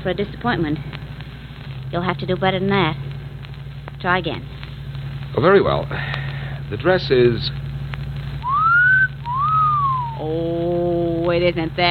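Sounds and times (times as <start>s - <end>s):
speech: 0.0s - 1.1s, 1.9s - 3.1s, 4.0s - 4.5s, 5.3s - 7.6s, 10.2s - 11.9s
low steady hum: 0.0s - 11.9s
two-part admiring wolf whistle: 8.4s - 10.3s.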